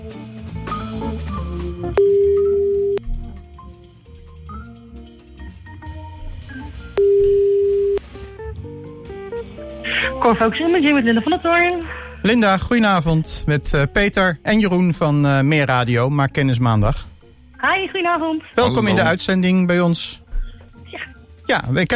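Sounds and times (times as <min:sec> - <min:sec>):
music: 0:00.0 - 0:21.9
telephone ringback tones on an outgoing call: 0:02.0 - 0:03.0, 0:07.0 - 0:08.0
speech: 0:10.2 - 0:17.1, 0:17.8 - 0:20.2, 0:21.0 - 0:21.9.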